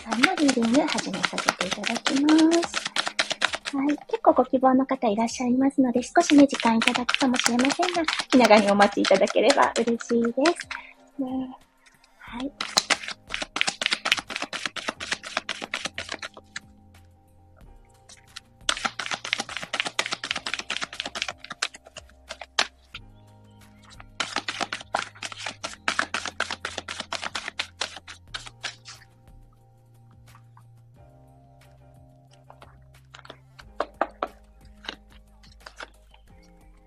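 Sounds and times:
speech: 0.0 - 2.9, 3.7 - 11.6, 12.3 - 12.8
tarot cards being shuffled and drawn: 0.0 - 4.2, 6.0 - 10.9, 12.4 - 16.7, 18.1 - 23.0, 23.7 - 29.2, 32.3 - 36.3.

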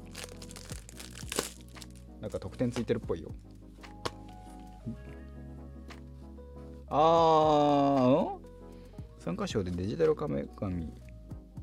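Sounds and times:
plastic film wrapping of a software package being ripped open: 0.0 - 2.4
speech: 2.2 - 3.5, 4.8 - 5.5, 6.9 - 8.4, 9.2 - 11.0.

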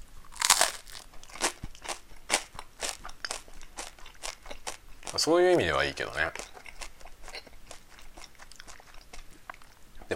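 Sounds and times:
person biting and chewing toasted bread: 0.3 - 9.2
speech: 5.2 - 6.5.

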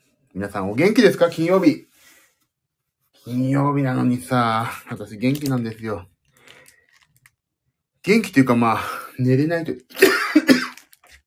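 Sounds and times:
speech: 0.4 - 1.9, 3.2 - 6.1, 8.0 - 10.1
person with a sore throat coughing harshly: 9.9 - 10.9.

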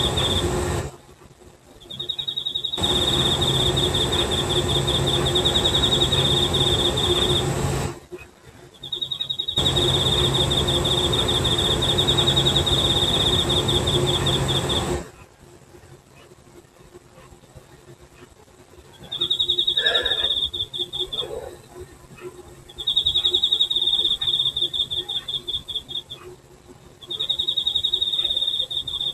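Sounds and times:
insects chirring in Hokkaido: 0.0 - 0.9, 1.7 - 8.0, 8.8 - 15.1, 18.9 - 21.8, 22.6 - 26.3, 27.0 - 29.1.

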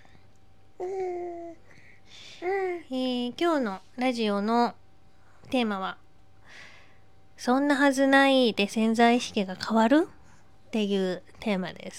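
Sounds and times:
speech: 0.8 - 1.2, 2.9 - 4.8, 5.5 - 6.0, 7.4 - 11.9
baby babbling: 0.8 - 1.6.

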